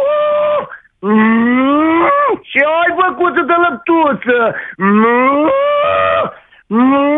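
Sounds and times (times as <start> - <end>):
person imitating a cow's moo: 0.0 - 2.4, 4.8 - 7.1
speech: 1.0 - 1.3, 2.6 - 7.1.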